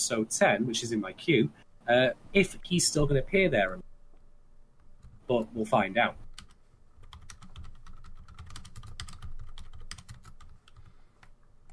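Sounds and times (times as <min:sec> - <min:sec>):
speech: 0:00.0 - 0:03.9, 0:05.3 - 0:06.2
typing on a computer keyboard: 0:06.3 - 0:11.7.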